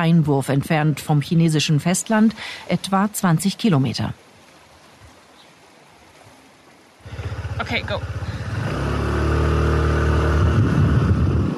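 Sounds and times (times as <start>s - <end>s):
speech: 0.0s - 4.3s, 7.7s - 8.2s
wind: 0.0s - 11.5s
moped engine droning: 7.0s - 11.5s
road noise: 7.0s - 11.5s.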